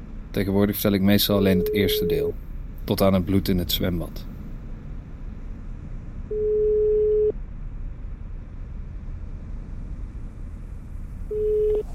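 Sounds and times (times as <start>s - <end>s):
low rumble: 0.0s - 11.9s
speech: 0.4s - 4.3s
outgoing call telephone ringing tone: 1.5s - 2.3s, 6.3s - 7.3s, 11.3s - 11.9s.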